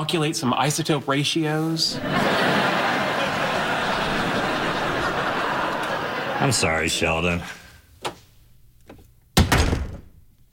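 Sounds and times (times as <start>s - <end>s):
speech: 0.0s - 2.8s, 6.4s - 7.6s
laughter: 1.9s - 7.7s
door slamming shut with a loud thud: 9.4s - 10.2s.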